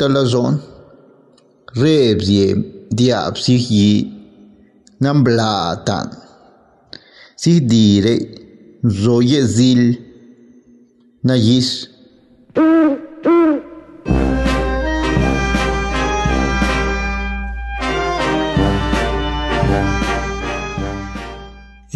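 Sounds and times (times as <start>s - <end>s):
speech: 0.0s - 0.7s, 1.7s - 4.2s, 5.0s - 6.2s, 7.4s - 10.0s, 11.2s - 11.9s, 12.6s - 13.0s
person imitating owl hoots: 12.6s - 14.9s
loud instrumental music with rhythmic strikes: 14.0s - 21.9s.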